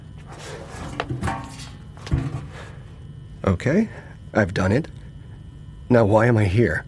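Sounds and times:
folding chair set right side up with wooden clunks and scrapes: 0.2 - 2.8
speech: 3.4 - 5.0, 5.9 - 6.8.

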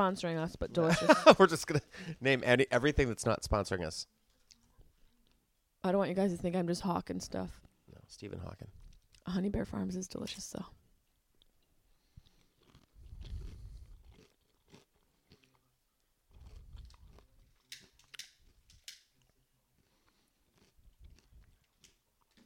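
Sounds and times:
speech: 0.0 - 4.2, 5.8 - 10.8
laughter: 0.8 - 2.2
crunching and chewing tortilla chips: 12.2 - 15.7, 16.3 - 22.4.

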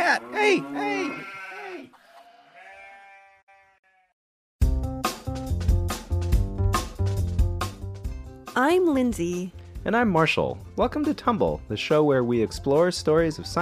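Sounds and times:
single sheep bleating: 0.0 - 4.2
speech: 0.2 - 1.4, 8.6 - 13.6
loud rhythmic music with a heavy beat: 4.6 - 8.2.

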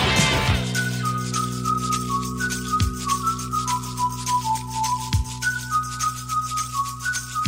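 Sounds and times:
full band with steady bass and drums: 0.0 - 1.0
person whistling a bright stepwise melody: 0.4 - 7.4.

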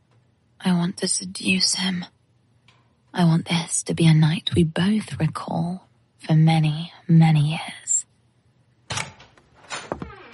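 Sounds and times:
speech: 0.7 - 2.2, 3.1 - 7.8
door scraping and creaking as it swings: 8.9 - 10.3.

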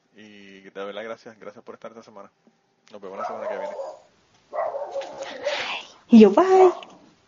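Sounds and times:
speech: 0.2 - 4.0, 6.1 - 6.9
dog barking: 3.1 - 5.7, 6.5 - 7.0.

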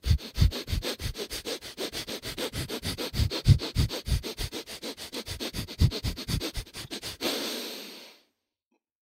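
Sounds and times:
rapid sharp inhales through the nose during a breathing exercise: 0.0 - 8.4.

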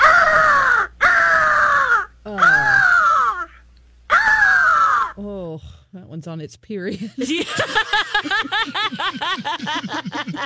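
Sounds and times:
eagle calling with harsh descending screeches: 0.0 - 5.2
speech: 6.2 - 10.4
laughter: 6.9 - 10.4.

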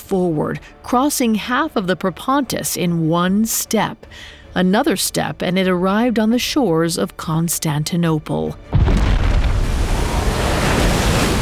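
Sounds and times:
speech: 0.1 - 9.0
roar of rushing water and surging waves: 9.2 - 11.3.

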